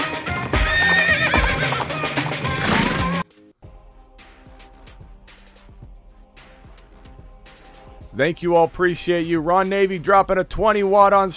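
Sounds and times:
hooves clip-clopping: 0.1 - 2.5
horse neighing: 0.4 - 3.2
speech: 8.2 - 11.3.

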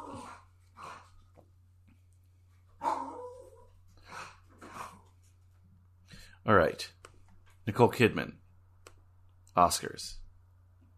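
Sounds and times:
dog barking: 2.8 - 3.4
speech: 6.4 - 7.0, 7.7 - 8.4, 9.6 - 10.2.

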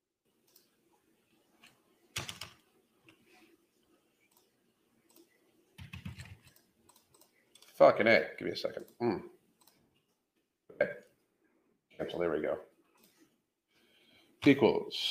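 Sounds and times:
typing on a computer keyboard: 2.2 - 2.6, 5.1 - 7.8
speech: 7.8 - 9.2, 12.2 - 12.7, 14.4 - 15.0.

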